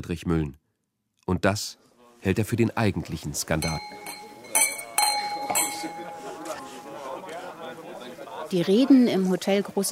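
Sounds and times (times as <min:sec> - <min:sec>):
speech: 0:00.0 - 0:00.6, 0:01.3 - 0:04.2, 0:08.5 - 0:09.9
glasses clinking in a toast with alcohol-free sparkling wine at a hotel: 0:03.5 - 0:07.6
murmur of voices: 0:03.6 - 0:09.9.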